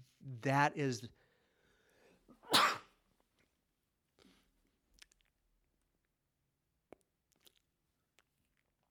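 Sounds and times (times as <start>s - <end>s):
speech: 0.2s - 1.2s
loud sneeze with a sharp breathy blast: 2.4s - 3.0s.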